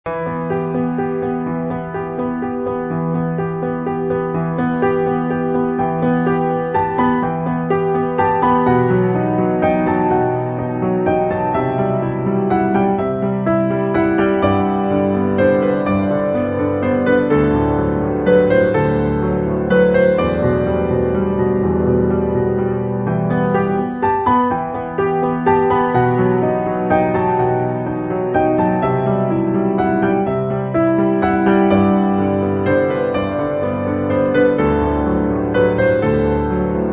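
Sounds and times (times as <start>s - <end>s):
piano piece: 0.0s - 36.9s.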